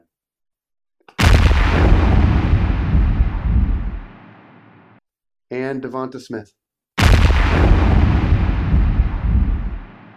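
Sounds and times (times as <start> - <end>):
loud explosion: 1.2 - 4.9, 7.0 - 10.1
speech: 5.5 - 6.6.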